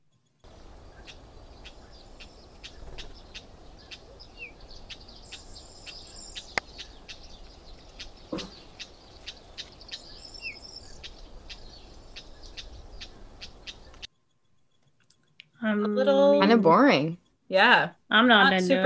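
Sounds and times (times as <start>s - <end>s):
Cyprus wheatear giving sharp clicking calls: 0.4s - 15.6s
dense hiss of insects: 0.5s - 14.0s
speech: 15.8s - 18.8s.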